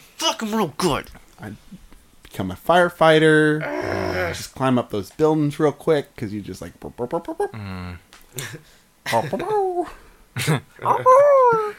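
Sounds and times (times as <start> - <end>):
speech: 0.4 - 11.7
people imitating dog whimpers with high whiny yelps: 3.6 - 4.4, 10.8 - 11.7.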